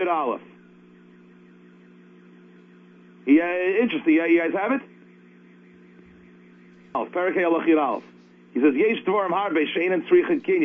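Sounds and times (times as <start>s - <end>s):
car alarm tone: 0.0s - 10.6s
faint engine-like hum: 0.0s - 10.6s
speech: 0.1s - 0.6s, 3.3s - 4.9s, 6.9s - 10.6s.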